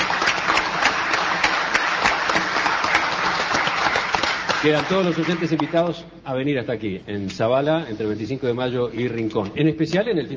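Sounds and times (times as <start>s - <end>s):
crowd applauding: 0.0s - 6.0s
speech: 4.6s - 10.3s.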